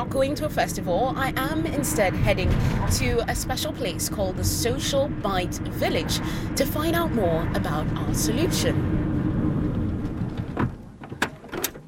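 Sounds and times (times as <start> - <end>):
low rumbling outdoor background: 0.0 - 11.8
speech: 0.1 - 9.0
car door opening and closing at a seaside location: 9.7 - 11.8.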